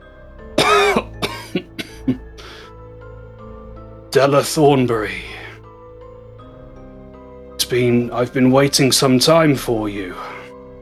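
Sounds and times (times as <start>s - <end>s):
person imitating wet gurgling cough: 0.6s - 2.2s
speech: 2.1s - 2.3s, 4.2s - 5.3s, 7.7s - 10.4s.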